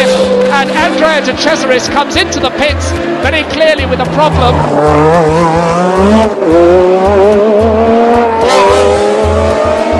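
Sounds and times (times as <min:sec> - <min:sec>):
Formula One race car engine howling: 0:00.0 - 0:09.9
speech: 0:00.9 - 0:07.8.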